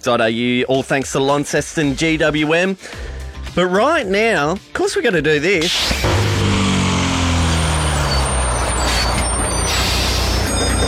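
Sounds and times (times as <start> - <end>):
speech: 0.0 - 6.1
heavy bus engine rumbling: 5.6 - 10.8
bus air brakes hissing: 7.4 - 10.8.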